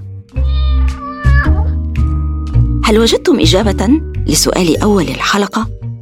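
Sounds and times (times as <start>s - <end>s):
cat meowing loudly: 0.4s - 1.8s
speech: 2.9s - 5.8s.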